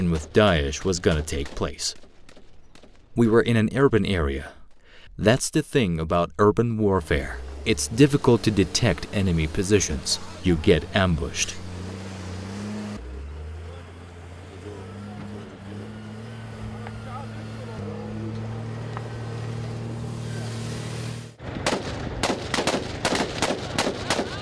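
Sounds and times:
speech: 0.0s - 2.1s, 3.2s - 4.6s, 5.2s - 11.7s
vehicle engine droning: 6.8s - 24.4s
rapid machine-gun fire from tanks and troops in urban fighting: 21.6s - 24.4s.

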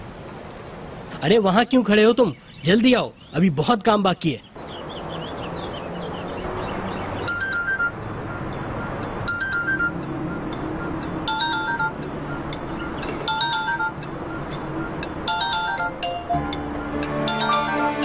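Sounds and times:
speech: 1.2s - 4.5s
mobile phone ringing with a bright electronic tone: 7.2s - 18.0s.

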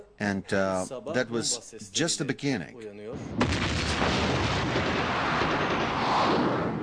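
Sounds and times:
speech: 0.2s - 5.6s
loud explosion: 3.2s - 6.8s
heavy sustained roar of rumbling debris: 3.4s - 6.8s.

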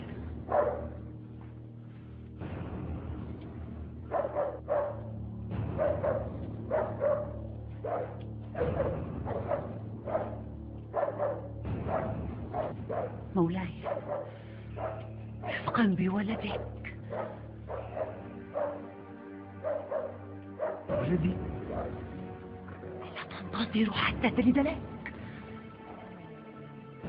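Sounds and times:
steady low hum: 0.0s - 27.0s
dog barking: 0.5s - 1.0s, 4.1s - 5.1s, 5.7s - 15.7s, 16.3s - 22.3s
speech: 23.5s - 24.9s.

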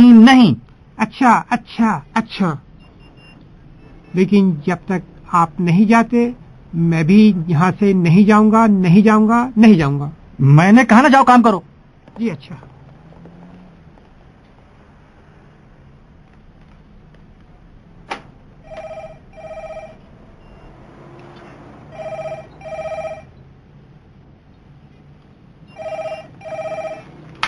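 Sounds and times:
speech: 0.3s - 2.7s, 4.1s - 12.7s
telephone ringing with short electronic trills: 18.6s - 20.8s, 21.4s - 23.4s, 25.7s - 27.4s.

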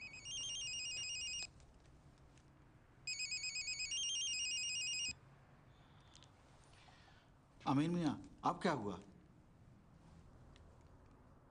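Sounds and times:
telephone ringing with electronic trill: 0.0s - 1.5s, 3.1s - 5.1s
speech: 7.7s - 9.1s.

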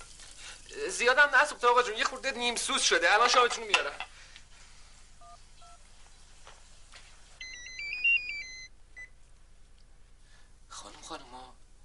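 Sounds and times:
speech: 0.8s - 4.1s
electronic phone keypad beeps dialing a number: 7.4s - 9.1s.

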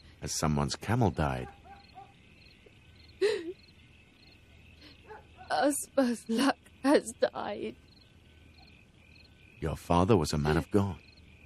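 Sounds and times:
steady hum of crickets at night outdoors: 0.0s - 11.4s
speech: 0.2s - 1.6s, 5.6s - 7.9s, 9.6s - 11.0s
single short sharp dog bark: 1.4s - 2.2s, 5.1s - 5.5s.

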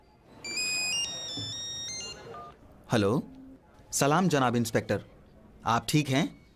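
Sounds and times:
faint room noise: 0.0s - 6.5s
telephone ringing with bright electronic ringtone: 0.4s - 2.6s
speech: 2.9s - 6.4s.

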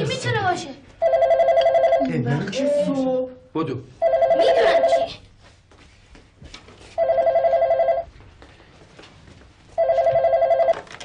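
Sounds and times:
speech: 0.5s - 1.3s, 2.1s - 5.2s
telephone ringing with fast warbling electronic trill: 1.0s - 2.1s, 4.0s - 5.1s, 7.0s - 8.1s, 9.8s - 11.0s.

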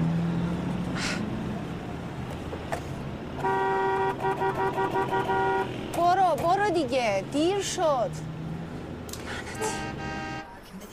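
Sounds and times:
steady traffic rumble in a traffic jam: 0.0s - 10.9s
car horns honking in a traffic jam: 3.4s - 6.7s, 9.3s - 10.6s
speech: 6.8s - 8.3s.

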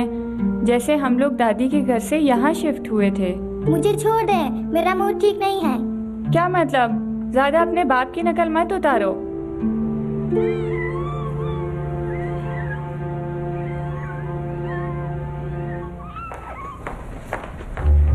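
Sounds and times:
speech: 0.0s - 9.7s, 10.3s - 10.8s
cats meowing and yowling: 10.4s - 17.0s
rustling noises: 16.0s - 18.1s.

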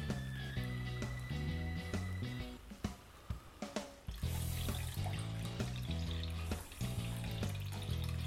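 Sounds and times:
music with a steady beat: 0.0s - 8.2s
almond milk pouring and splashing through a four-layer straining cloth: 4.1s - 8.2s.

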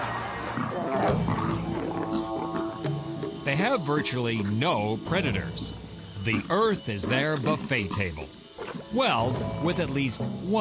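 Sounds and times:
lion roaring and growling: 0.5s - 2.9s
speech: 3.5s - 10.5s.

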